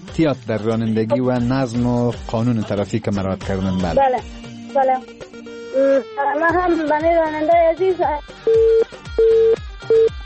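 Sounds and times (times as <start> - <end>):
speech: 0.2 - 10.1
telephone busy tone after a dropped call: 8.5 - 10.2.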